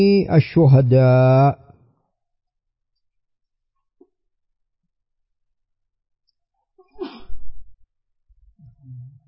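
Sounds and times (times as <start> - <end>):
speech: 0.0 - 1.6
person sneezing: 7.0 - 7.4.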